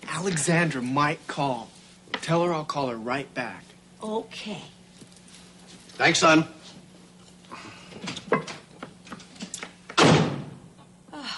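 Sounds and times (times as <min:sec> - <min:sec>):
speech: 0:00.2 - 0:04.8, 0:06.0 - 0:06.6
door slamming shut: 0:10.0 - 0:10.6.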